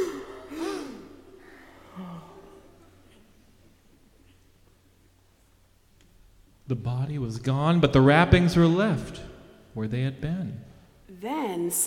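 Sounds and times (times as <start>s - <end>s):
sharp breathy gasp: 0.0s - 2.6s
soft exhale and quiet breathing: 0.0s - 3.5s
speech: 6.7s - 11.8s.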